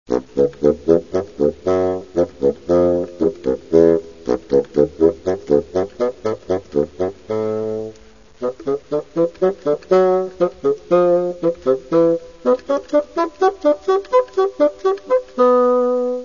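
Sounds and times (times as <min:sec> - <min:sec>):
bassoon: 0:00.1 - 0:16.2.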